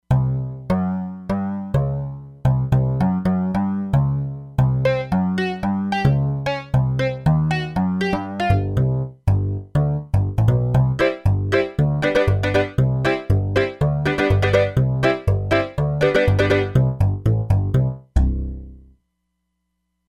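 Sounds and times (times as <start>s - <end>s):
factory bass patch on a synthesizer module: 0.1s - 18.9s.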